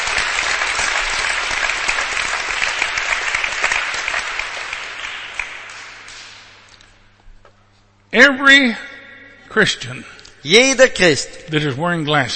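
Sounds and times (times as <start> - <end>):
applause from a crowd at a Christian worship meeting: 0.0 - 6.7
speech: 8.2 - 8.9, 9.5 - 12.3.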